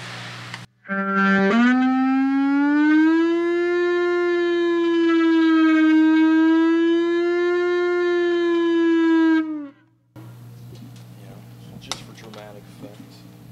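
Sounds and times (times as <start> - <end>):
slide guitar drone with siren-like wailing tone: 0.8 - 10.4.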